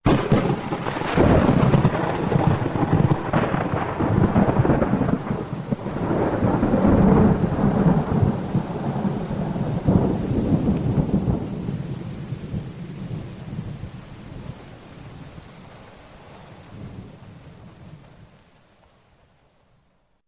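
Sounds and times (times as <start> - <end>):
thunder claps from lightning strikes in a storm: 0.0 - 14.6.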